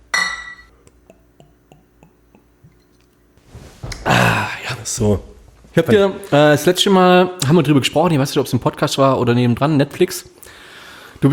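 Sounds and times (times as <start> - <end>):
glasses clinking together in a toast: 0.1 - 0.8
speech: 4.8 - 10.4, 11.2 - 11.3.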